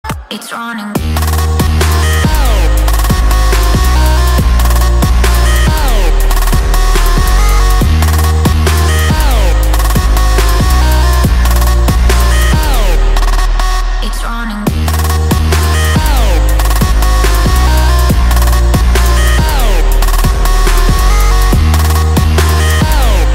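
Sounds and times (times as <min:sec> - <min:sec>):
bass boosted trap car music mix: 0:00.0 - 0:23.3.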